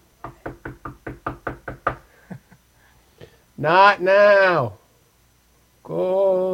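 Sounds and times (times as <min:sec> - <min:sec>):
firm knocking on a door: 0:00.2 - 0:02.0
speech: 0:03.6 - 0:04.8.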